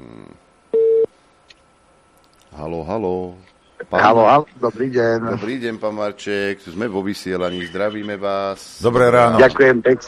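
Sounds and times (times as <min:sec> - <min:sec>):
telephone beep while calling a member of parliament: 0:00.8 - 0:01.1
speech: 0:02.6 - 0:10.0.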